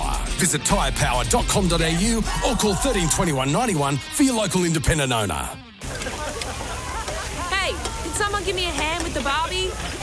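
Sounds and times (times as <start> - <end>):
several voices chattering indistinctly: 0.0 - 10.0
speech: 0.4 - 5.6
laughter: 1.7 - 3.8, 5.8 - 8.5
food sizzling on a barbecue grill: 5.8 - 10.0.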